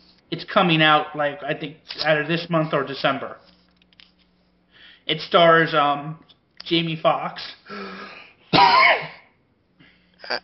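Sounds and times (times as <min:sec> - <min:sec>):
speech: 0:00.3 - 0:03.5, 0:05.1 - 0:09.2, 0:10.2 - 0:10.4
harsh cough: 0:08.5 - 0:09.3.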